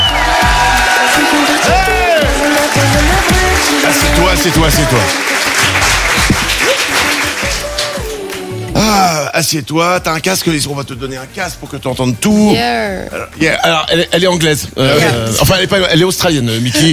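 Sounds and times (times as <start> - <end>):
scattered cheers and whoops from a live audience: 0.0 - 3.2
live audience applauding: 0.0 - 8.6
speech: 4.4 - 5.4, 8.9 - 16.9.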